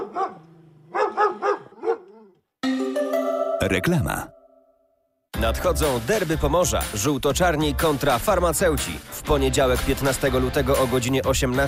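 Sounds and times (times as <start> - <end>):
dog barking: 0.0 - 2.4
bright tonal jingle: 2.6 - 4.9
speech: 3.6 - 4.4, 5.4 - 11.6.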